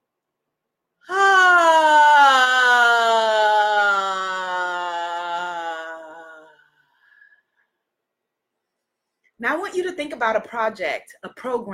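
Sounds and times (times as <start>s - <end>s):
deep breath let out as a long voiced moan: 1.1s - 6.8s
speech: 10.0s - 11.7s.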